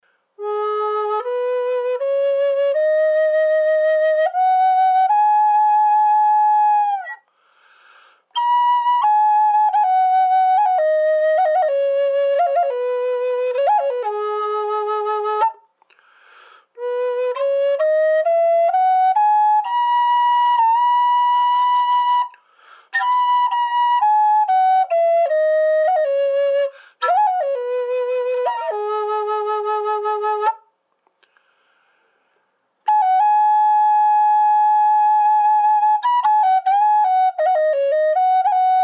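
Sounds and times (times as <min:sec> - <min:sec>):
Native American style Curly Pyinma flute playing in G sharp minor, dry: 0:00.4 - 0:07.3, 0:08.3 - 0:15.7, 0:16.7 - 0:30.7, 0:32.8 - 0:38.8.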